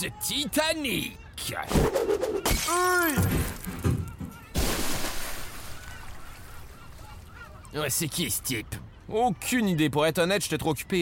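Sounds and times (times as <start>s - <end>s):
speech: 0.0s - 3.8s, 7.7s - 11.0s
champagne bottle smashing against a ship's hull at a launch: 4.5s - 5.8s.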